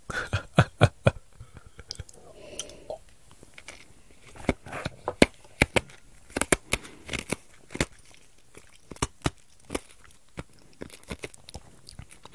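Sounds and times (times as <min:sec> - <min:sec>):
ice cubes being chewed between teeth: 0:03.5 - 0:12.3.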